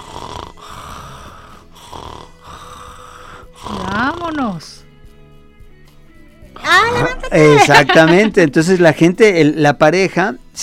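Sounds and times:
person breathing: 0.0s - 3.8s
person imitating snoring with their voice: 0.0s - 4.7s
speech: 4.0s - 4.8s, 6.7s - 10.6s
laughter: 6.8s - 8.5s.

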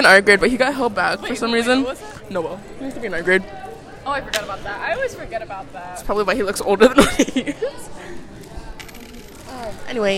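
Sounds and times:
speech: 0.0s - 8.3s, 9.6s - 10.1s
laughter: 6.8s - 8.4s
coins placed as bets clinking on a hard surface: 8.8s - 9.6s.

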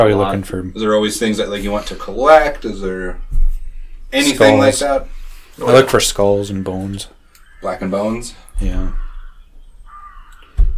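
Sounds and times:
speech: 0.0s - 3.3s, 4.1s - 9.0s
sudden low thump: 3.3s - 3.7s
harsh crow-like bird caw: 8.9s - 10.7s.

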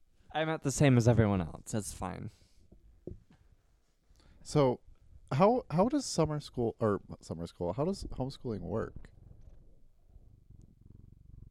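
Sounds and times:
speech: 0.4s - 2.4s, 4.5s - 9.1s
cat purring: 6.0s - 11.4s.

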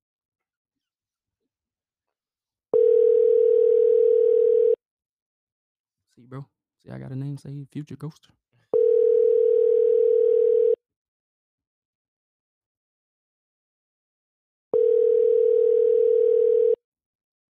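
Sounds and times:
telephone ringback tone on an outgoing call: 2.8s - 4.8s, 8.8s - 10.8s, 14.8s - 16.8s
speech: 6.2s - 8.4s.

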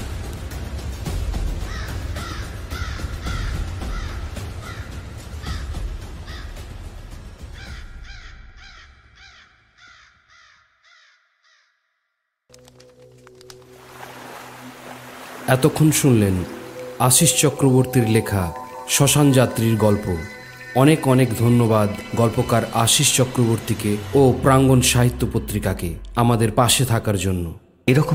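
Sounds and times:
raven cawing while circling above a cremation pyre: 1.6s - 6.8s, 7.4s - 11.8s, 16.4s - 17.0s
speech: 15.5s - 28.1s.

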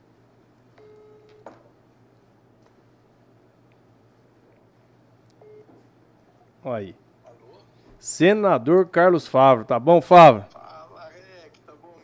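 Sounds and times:
quiet steady hum: 0.0s - 12.0s
telephone keypad tones as a number is dialed: 0.8s - 1.5s, 5.4s - 5.7s
speech: 6.6s - 7.0s, 8.0s - 10.5s.

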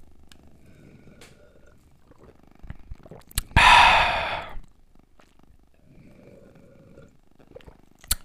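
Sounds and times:
person gulping and swallowing from a glass: 1.0s - 5.4s, 6.5s - 8.2s.

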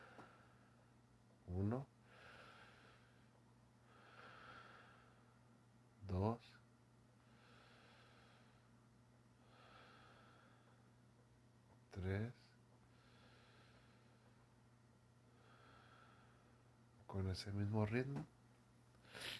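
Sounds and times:
slow deep breathing in and out: 0.0s - 1.0s, 2.0s - 5.5s, 7.2s - 11.0s, 12.8s - 14.6s, 15.2s - 16.8s
low steady hum: 0.0s - 19.3s
speech: 1.5s - 2.0s, 12.0s - 12.4s, 17.2s - 18.4s.

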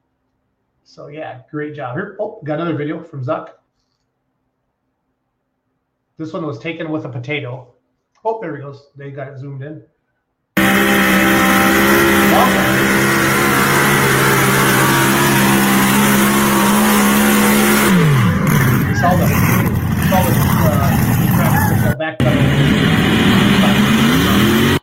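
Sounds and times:
speech: 0.9s - 3.6s, 6.2s - 9.9s, 19.0s - 19.5s, 22.0s - 23.4s
pulling tractor engine roaring during a run: 10.6s - 24.8s.

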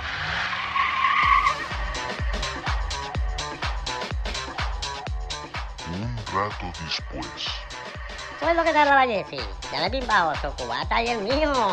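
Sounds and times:
car starting and driving off: 0.0s - 4.7s
speech: 6.4s - 7.6s, 8.4s - 11.7s.

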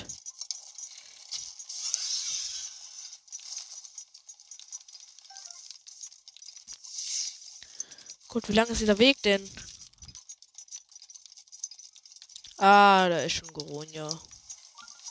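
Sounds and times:
video game fireballs raining down crackling and hissing: 0.0s - 15.0s
speech: 8.4s - 9.6s, 12.6s - 14.3s.

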